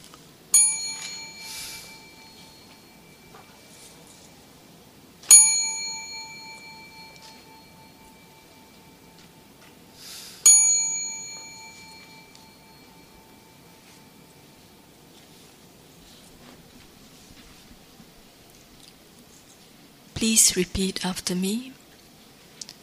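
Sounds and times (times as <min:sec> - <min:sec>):
small bell struck as a signal for bowing: 0:00.5 - 0:15.2
speech: 0:20.2 - 0:21.8.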